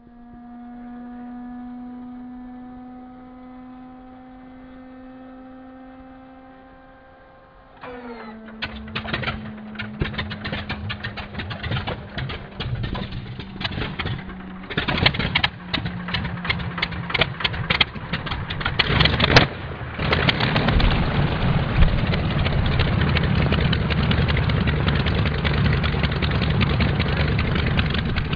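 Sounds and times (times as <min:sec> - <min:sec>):
SPAD VII starter: 0:07.8 - 0:21.1, 0:21.9 - 0:28.3.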